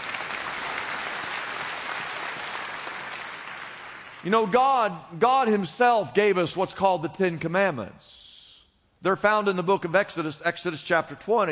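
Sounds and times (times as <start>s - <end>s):
audience applause: 0.0s - 4.2s
speech: 4.2s - 8.2s, 9.0s - 11.5s.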